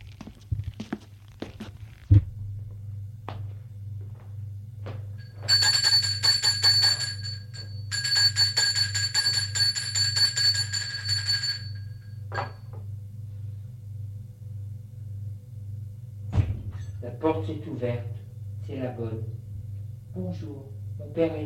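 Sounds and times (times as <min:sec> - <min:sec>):
steady low hum: 0:00.0 - 0:21.4
electronic doorbell ringing at a parents' house: 0:05.2 - 0:12.7
dull thud: 0:16.3 - 0:16.8.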